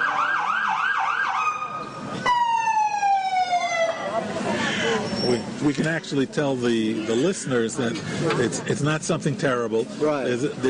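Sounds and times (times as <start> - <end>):
ambulance siren: 0.0 - 4.3
busy street noise: 0.0 - 10.6
speech: 5.3 - 10.6.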